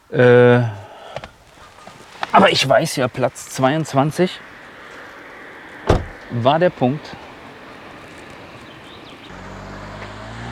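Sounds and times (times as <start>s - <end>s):
speech: 0.1s - 0.5s, 2.4s - 4.5s, 6.3s - 7.2s
car driving past on a road: 4.3s - 10.4s.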